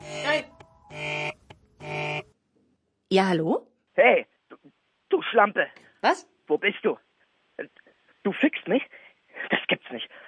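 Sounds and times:
telephone ringing with bright buzzy electronic tone: 0:00.0 - 0:02.3
speech: 0:03.1 - 0:04.6, 0:05.3 - 0:07.0, 0:07.6 - 0:10.2.

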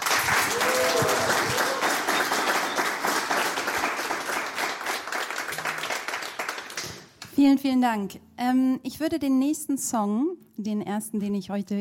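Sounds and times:
audience cheering: 0:00.0 - 0:06.0
audience applause: 0:00.0 - 0:07.2
speech: 0:07.4 - 0:11.7.

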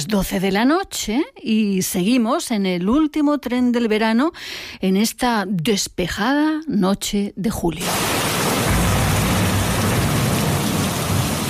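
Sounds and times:
speech: 0:00.0 - 0:08.3
heavy rain in a sudden thunderstorm: 0:07.8 - 0:11.4
low rumble of thunder: 0:07.8 - 0:11.4.

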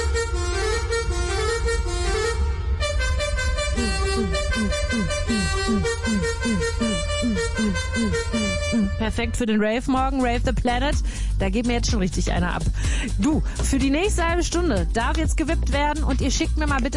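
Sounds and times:
30-tonne truck horn honking: 0:00.0 - 0:09.4
speech: 0:09.1 - 0:16.9.

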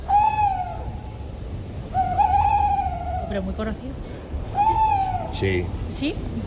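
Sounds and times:
owl hooting: 0:00.0 - 0:03.8, 0:04.5 - 0:05.7
low background hum: 0:00.0 - 0:06.4
speech: 0:03.3 - 0:04.4, 0:05.4 - 0:06.4.

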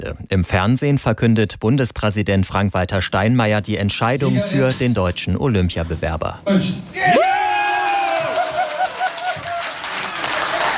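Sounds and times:
speech: 0:00.0 - 0:07.4
large crowd cheering: 0:07.0 - 0:10.7
sustained rising whoop: 0:07.0 - 0:10.7
clapping: 0:07.6 - 0:10.7.

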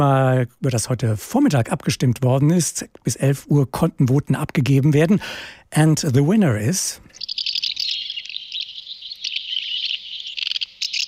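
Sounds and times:
speech: 0:00.0 - 0:07.2
house martin calls: 0:06.6 - 0:11.0.

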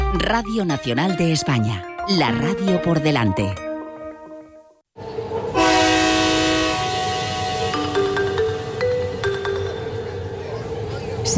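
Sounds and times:
speech: 0:00.1 - 0:03.7
rail noise rumble: 0:04.9 - 0:11.3
loud train horn of a departing train: 0:05.4 - 0:08.1.

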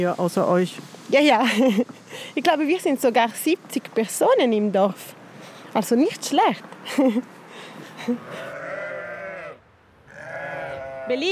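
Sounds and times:
speech: 0:00.0 - 0:07.4, 0:08.0 - 0:08.5, 0:11.1 - 0:11.3
two sheep bleating back and forth: 0:08.2 - 0:11.3.

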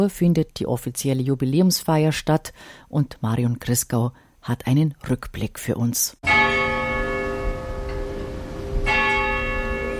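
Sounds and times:
speech: 0:00.0 - 0:06.5
church bells ringing: 0:06.2 - 0:09.9.

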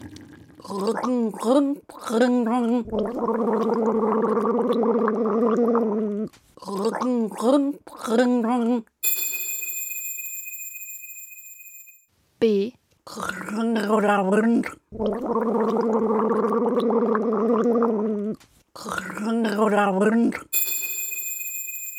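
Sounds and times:
person gargling water while voicing a tune: 0:00.0 - 0:08.2, 0:13.1 - 0:20.5
speech: 0:00.6 - 0:08.9, 0:12.4 - 0:20.6
bright electronic ringing tone: 0:09.0 - 0:12.0, 0:20.6 - 0:21.9.

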